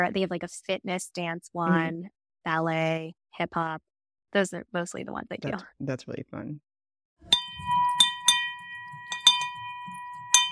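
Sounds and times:
speech: 0.0 - 6.7
handheld money bell ringing: 7.3 - 10.4.

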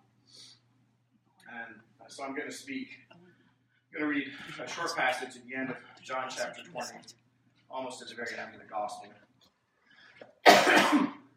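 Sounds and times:
speech: 2.1 - 9.2
harsh breathy cough: 10.4 - 11.2.

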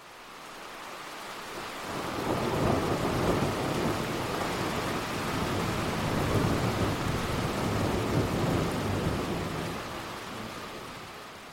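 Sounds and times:
heavy downpour: 0.0 - 11.5
deep rolling thunder: 2.0 - 9.8.

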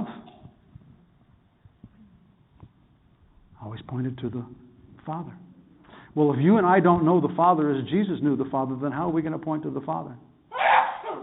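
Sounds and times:
speech: 3.8 - 5.5, 6.1 - 10.3
sneeze: 10.5 - 11.2.

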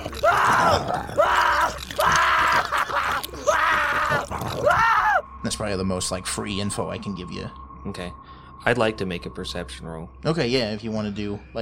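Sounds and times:
person lying on the ground with a chain around their leg screaming while bitten: 0.0 - 5.2
speech: 5.6 - 11.6.

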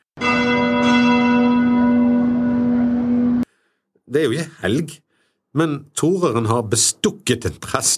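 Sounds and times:
church bells ringing: 0.0 - 3.5
speech: 4.1 - 7.9.

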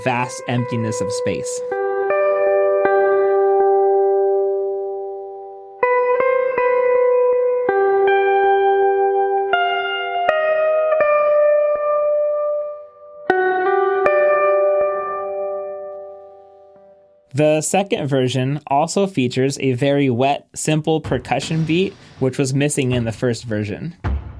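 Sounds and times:
speech: 0.0 - 1.8, 17.4 - 24.1
clean electric guitar playing slow sustained chords with heavy reverb: 0.0 - 17.1.

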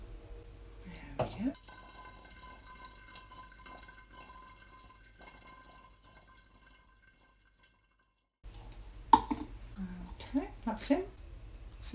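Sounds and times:
quiet hum of room noise: 0.0 - 11.9
food colouring dripping into brandy: 1.6 - 8.3.

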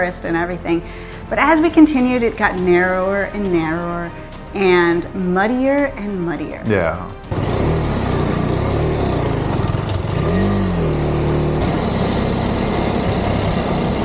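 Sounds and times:
speech: 0.0 - 7.2
KTM 250 Adventure motorcycle engine droning while riding on a muddy dirt road: 5.8 - 14.0.

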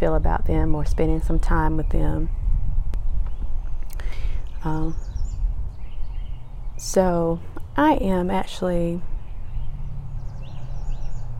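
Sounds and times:
speech: 0.0 - 2.4, 4.6 - 5.1, 6.8 - 9.1
birds chirping outdoors: 1.0 - 11.3
passing cars rumbling: 5.4 - 11.3.

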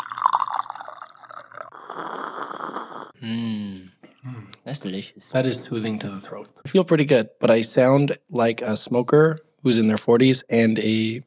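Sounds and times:
tea pouring into a cup: 0.0 - 2.8
speech: 3.2 - 3.5, 4.7 - 11.2.

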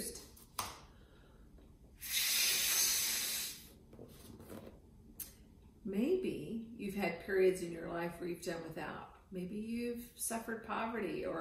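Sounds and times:
loud steady rush of air: 2.0 - 3.8
speech: 5.8 - 11.3.

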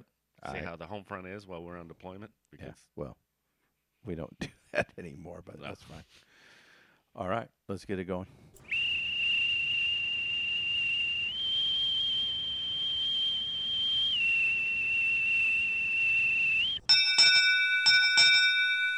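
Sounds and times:
speech: 0.4 - 3.2, 4.0 - 6.5, 7.1 - 8.7
long shrill whistle signalling liberty call: 8.6 - 18.1
short bright ringing tones: 16.8 - 18.9.

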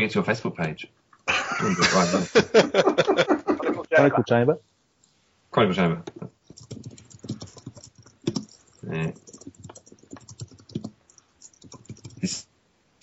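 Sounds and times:
speech: 0.0 - 3.4, 4.0 - 4.7, 5.6 - 6.9, 8.9 - 9.3, 12.2 - 12.4
laughter: 1.3 - 4.1
man typing on a computer keyboard: 6.4 - 12.3.

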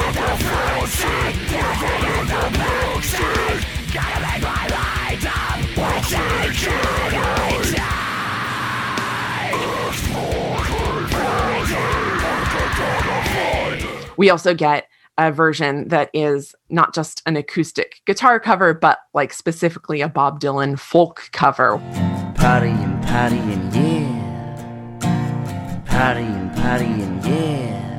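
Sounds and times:
distorted death metal guitars: 0.0 - 14.2, 21.8 - 27.9
harsh screamed death metal vocals: 0.0 - 14.2
rapid pounding death metal drums: 0.0 - 14.2
speech: 14.2 - 24.2, 26.0 - 27.8.

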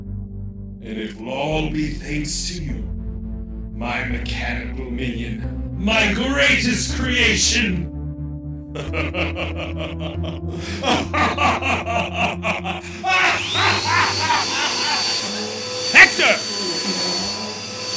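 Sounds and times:
speech: 0.8 - 2.9, 3.8 - 7.9, 8.7 - 14.7, 16.0 - 17.3
laughter: 8.8 - 17.7
vacuum cleaner running: 11.9 - 17.9.

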